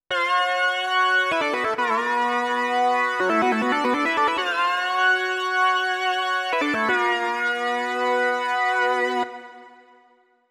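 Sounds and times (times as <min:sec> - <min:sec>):
synthesizer lead fifth with portamento: 0:01.0 - 0:08.9.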